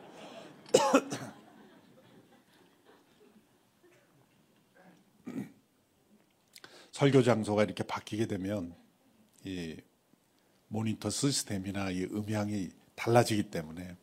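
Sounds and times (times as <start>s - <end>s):
laughter: 0.0s - 4.2s
person coughing: 0.7s - 1.4s, 5.2s - 5.6s
rough throat clearing: 4.8s - 5.6s
speech: 7.0s - 8.8s, 9.4s - 9.9s, 10.7s - 14.0s.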